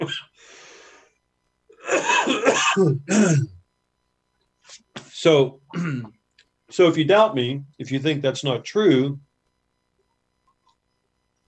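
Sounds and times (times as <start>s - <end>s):
throat clearing and rough coughing from a tickle in the throat: 1.8s - 3.6s, 5.7s - 6.2s
speech: 2.3s - 3.6s, 5.2s - 9.3s.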